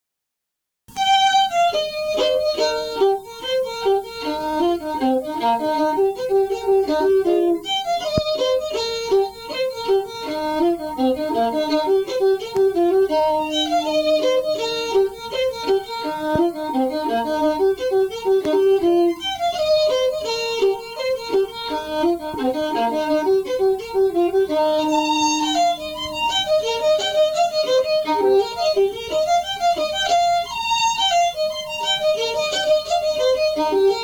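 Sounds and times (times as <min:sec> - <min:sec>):
wedding fiddle: 0:00.9 - 0:34.0.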